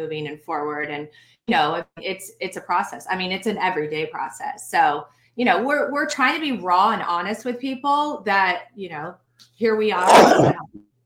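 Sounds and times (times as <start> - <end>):
speech: 0.0 - 10.8
person sneezing: 10.0 - 10.7.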